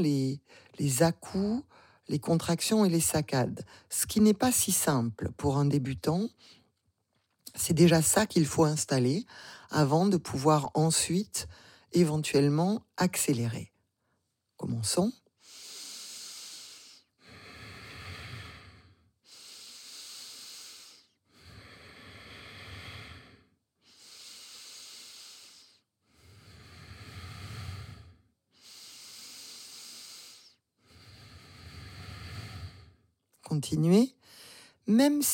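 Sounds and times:
speech: 0.0 - 6.6, 7.5 - 13.7, 14.6 - 15.2, 33.6 - 34.2, 34.9 - 35.3
bhastrika bellows yoga breathing through the nose: 15.4 - 33.1.

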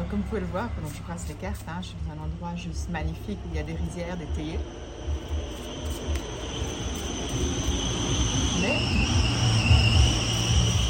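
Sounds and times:
faint high whine: 0.0 - 10.8
road traffic rumbling at the side of a road among rice paddies and tea plantations: 0.0 - 10.8
speech: 0.1 - 5.3, 7.4 - 9.4.

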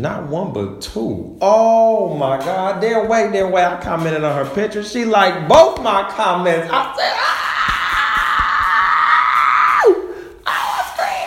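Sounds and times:
speech: 0.0 - 7.4
excited human scream: 7.0 - 11.2
person shrieking: 7.0 - 11.2.

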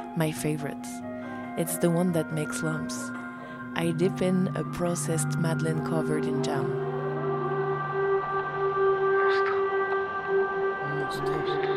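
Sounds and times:
speech: 0.2 - 3.2, 3.8 - 6.8
civil defense air raid siren outdoors: 6.1 - 11.6.

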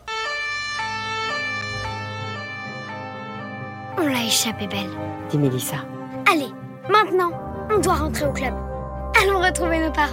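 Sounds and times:
police car siren wailing in alternating stepped tones: 0.0 - 5.2
speech: 4.0 - 10.1.

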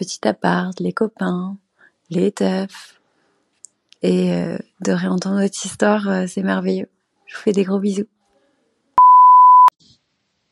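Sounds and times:
speech: 0.0 - 3.0, 4.0 - 8.2
electronic beep from an answering machine: 9.0 - 9.7.

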